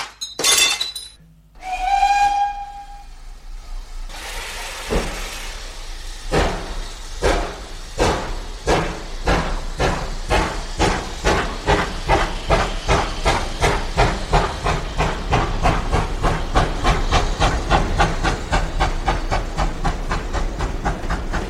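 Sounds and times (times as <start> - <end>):
glass bottle smashing against a steam locomotive: 0.0 - 1.2
steam locomotive whistle: 1.6 - 3.4
steam locomotive steam hissing: 1.6 - 21.4.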